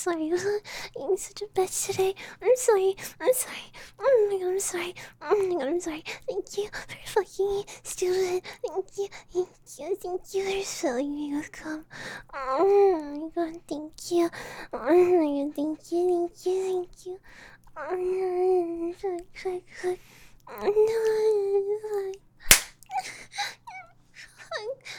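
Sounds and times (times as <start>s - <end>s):
speech: 0.0s - 23.6s
hand slapping skin: 22.5s - 22.9s.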